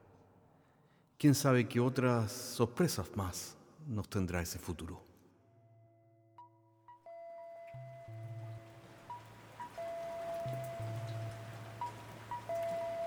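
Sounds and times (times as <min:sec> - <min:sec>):
speech: 0:01.2 - 0:05.1
faint chimes: 0:05.9 - 0:13.0
soft sustained electronic tones: 0:07.1 - 0:13.0
steady rain: 0:07.7 - 0:13.0.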